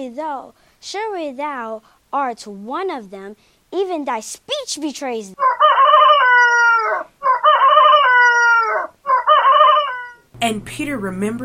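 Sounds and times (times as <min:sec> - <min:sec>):
speech: 0:00.0 - 0:05.4, 0:10.4 - 0:11.4
rooster crowing: 0:05.4 - 0:10.3.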